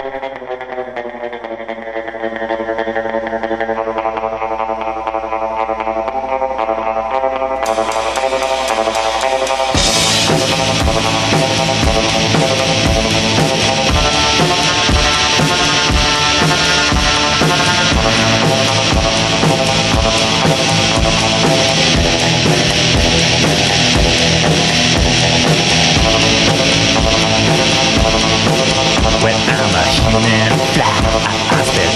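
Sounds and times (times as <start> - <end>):
dense distorted guitars in a punk rock song: 0.0 - 31.9
driving drums in a punk rock song: 7.6 - 31.9.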